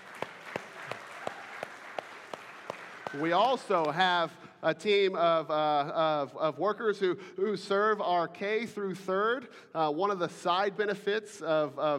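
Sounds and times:
audience applause: 0:00.0 - 0:04.1
speech: 0:03.1 - 0:11.9.

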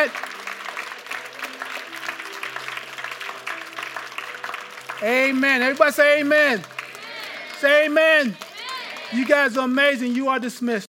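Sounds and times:
speech: 0:00.0 - 0:00.3, 0:05.0 - 0:06.8, 0:07.6 - 0:08.4, 0:09.1 - 0:10.8
audience clapping in steady continuous applause: 0:00.0 - 0:10.4.

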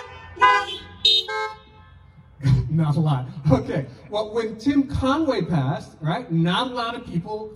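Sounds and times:
car horns honking: 0:00.0 - 0:02.4
speech: 0:02.4 - 0:07.5.

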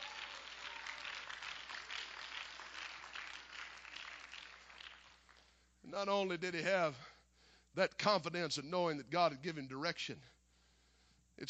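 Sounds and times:
large audience clapping hands in praise: 0:00.0 - 0:05.5
speech: 0:05.9 - 0:07.1, 0:07.7 - 0:10.3.

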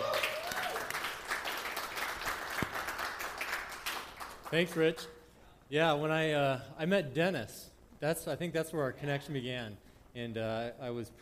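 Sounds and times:
crowd applauding to welcome a speaker: 0:00.0 - 0:05.0
speech: 0:04.5 - 0:11.1.

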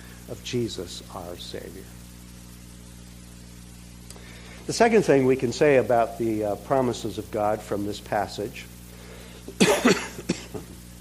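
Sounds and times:
low steady hum: 0:00.0 - 0:11.0
speech: 0:00.3 - 0:02.0, 0:04.7 - 0:08.7
person coughing with a tickle in the throat: 0:09.5 - 0:10.8.

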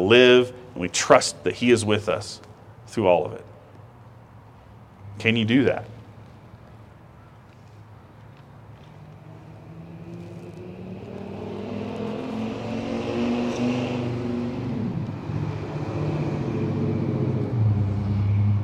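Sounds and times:
speech: 0:00.0 - 0:03.5, 0:05.2 - 0:06.0
heavy truck rumbling past outdoors: 0:08.9 - 0:18.6.

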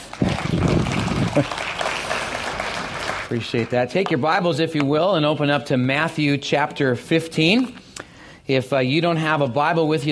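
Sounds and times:
church audience applauding: 0:00.0 - 0:03.9
speech: 0:01.4 - 0:01.8, 0:03.3 - 0:07.8, 0:08.5 - 0:10.0.

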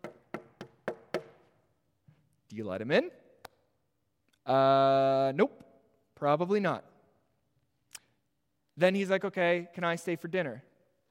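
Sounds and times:
firm knocking on a wooden door: 0:00.0 - 0:01.4
speech: 0:02.5 - 0:03.2, 0:04.5 - 0:06.9, 0:08.8 - 0:10.7.

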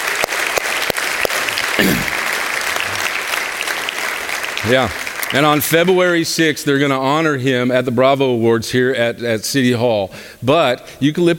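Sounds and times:
audience applause: 0:00.0 - 0:06.2
speech: 0:04.6 - 0:11.3.

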